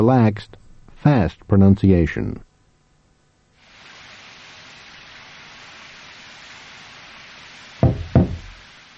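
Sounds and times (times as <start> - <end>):
speech: 0.0 - 2.5
steady hiss of noise: 0.0 - 8.9
firm knocking on a door: 7.8 - 8.6.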